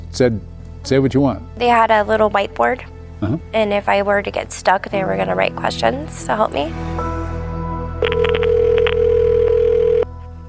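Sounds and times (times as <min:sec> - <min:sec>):
speech: 0:00.2 - 0:07.1
telephone ringing with a steady electronic tone: 0:08.0 - 0:10.1.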